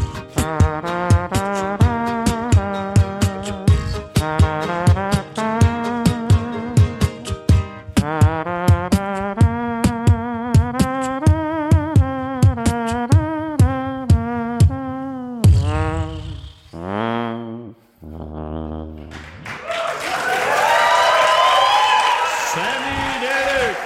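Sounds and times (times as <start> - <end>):
person singing at a live unplugged performance: 0.0 - 17.6
audience applause and cheering at end of live song: 19.1 - 23.8.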